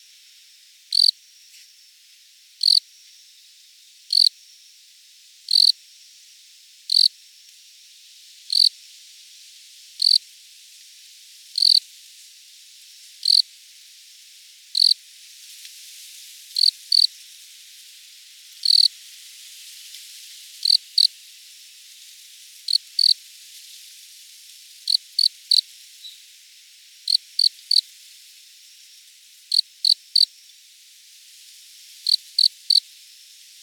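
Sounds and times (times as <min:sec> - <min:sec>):
Loxoblemmus sylvestris cricket: 0:00.0 - 0:33.6.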